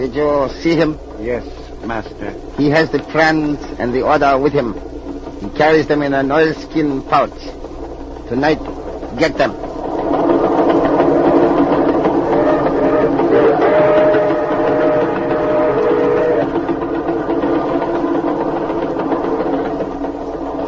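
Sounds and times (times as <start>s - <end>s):
speech: 0.0s - 7.7s, 8.3s - 9.7s
train rolling along rails with clickety-clack: 0.0s - 20.6s.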